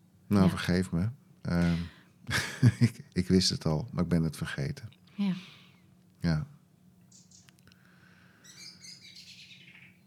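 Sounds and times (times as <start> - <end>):
low steady hum: 0.0 - 10.0
speech: 0.3 - 5.5, 6.2 - 6.5
laughter: 1.7 - 3.0
birds chirping outdoors: 7.1 - 7.6, 8.4 - 10.0.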